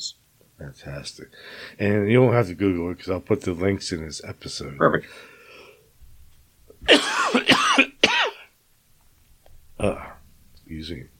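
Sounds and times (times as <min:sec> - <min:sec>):
speech: 0:00.0 - 0:05.4, 0:10.7 - 0:11.1
harsh coughs: 0:06.8 - 0:08.5.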